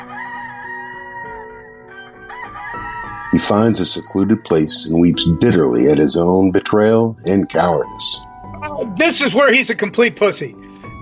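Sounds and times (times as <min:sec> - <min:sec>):
rooster crowing: 0:00.0 - 0:04.4
speech: 0:03.3 - 0:08.3, 0:09.0 - 0:11.0.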